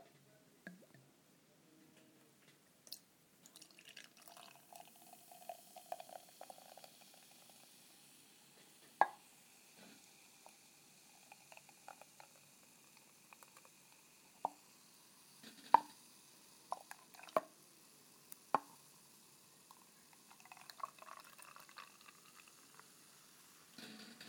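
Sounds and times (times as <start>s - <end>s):
beer poured from a bottle into a glass: 2.9s - 23.8s
beer dripping: 3.5s - 7.2s, 19.7s - 22.9s.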